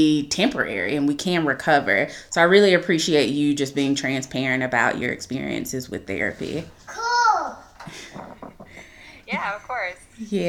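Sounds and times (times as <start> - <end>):
speech: 0.0 - 7.0, 9.3 - 10.4
young child babbling: 6.9 - 7.7.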